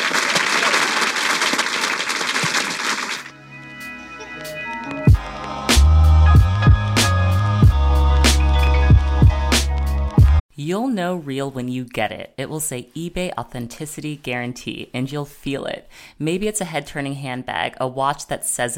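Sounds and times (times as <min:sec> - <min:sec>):
audience applauding with dense steady clapping: 0:00.0 - 0:03.3
music with sharp percussive hits: 0:04.4 - 0:10.4
speech: 0:10.7 - 0:18.7.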